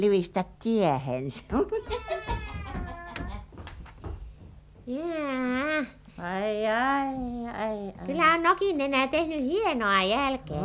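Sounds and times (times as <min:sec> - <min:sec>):
speech: 0:00.0 - 0:02.2, 0:04.9 - 0:10.6
laughter: 0:01.6 - 0:03.5
cat meowing with a drawn-out wavering cry: 0:01.8 - 0:03.4.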